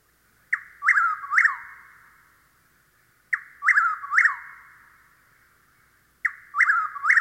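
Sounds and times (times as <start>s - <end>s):
Chuck-will's-widow nighttime song in sandy pine woods of the southeast: 0.5s - 2.2s, 3.3s - 5.2s, 5.8s - 7.2s.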